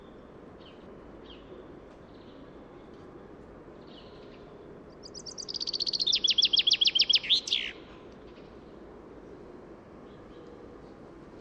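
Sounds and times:
faint background hiss: 0.0 - 11.3
common chaffinch Fringilla coelebs singing: 5.0 - 7.8.

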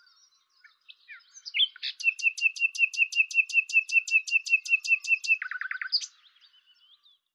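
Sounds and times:
Common nightingale Luscinia megarhynchos song: 0.0 - 7.3.

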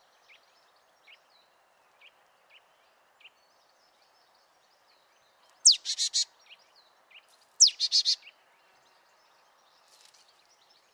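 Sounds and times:
marsh tit Poecile palustris call: 5.7 - 6.2, 7.6 - 8.2.

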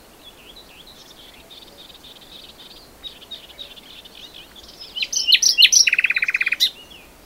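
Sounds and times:
common nightingale singing: 0.0 - 7.2.

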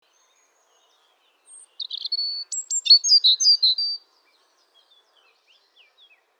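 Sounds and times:
European robin (Erithacus rubecula) singing: 1.5 - 4.0.

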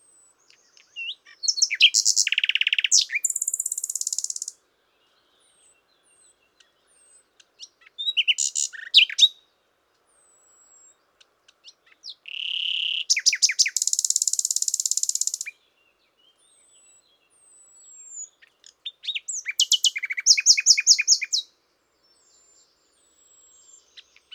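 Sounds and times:
common nightingale Luscinia megarhynchos song: 0.0 - 24.3.

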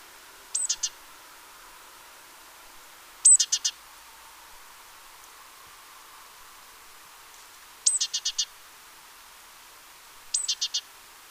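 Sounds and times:
great tit Parus major call phrases: 0.5 - 1.0, 3.2 - 3.8, 7.8 - 8.5, 10.3 - 10.9.

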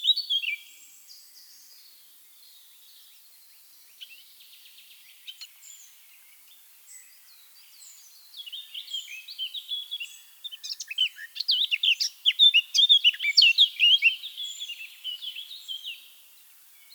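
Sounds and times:
Eurasian blackcap Sylvia atricapilla song: 0.0 - 16.9.

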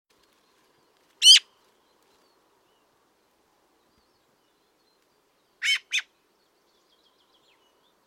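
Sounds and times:
Eurasian magpie calling: 1.2 - 1.5, 5.6 - 6.1.

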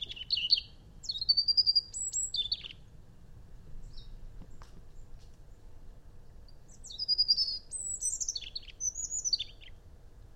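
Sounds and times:
European robin Erithacus rubecula song: 0.0 - 3.0, 3.8 - 4.2, 4.9 - 10.3.

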